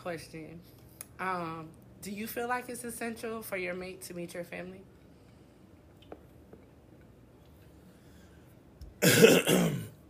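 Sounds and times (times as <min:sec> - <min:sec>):
speech: 0:00.0 - 0:04.9
person clearing throat: 0:09.0 - 0:10.0.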